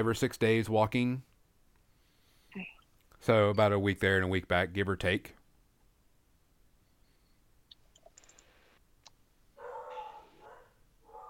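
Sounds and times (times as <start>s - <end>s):
speech: 0.0s - 1.3s, 2.5s - 5.4s
sharp clicks: 7.7s - 9.2s
dogs barking and yipping at dusk: 9.6s - 11.2s.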